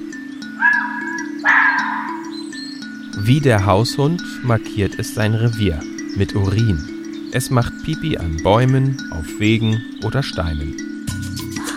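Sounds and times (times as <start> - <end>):
wild dog barking hoarsely: 0.4 - 2.6
speech: 3.2 - 10.9.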